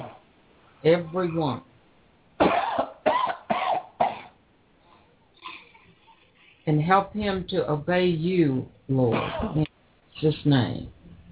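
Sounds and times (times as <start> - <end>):
speech: 0.8 - 1.7, 6.7 - 11.0
deep forceful coughing: 2.4 - 4.4, 9.1 - 9.7.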